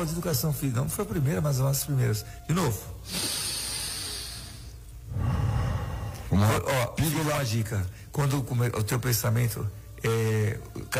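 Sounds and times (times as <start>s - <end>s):
speech: 0.0s - 3.4s, 6.4s - 10.9s
deep breathing exercise inhale and exhale: 3.0s - 6.4s.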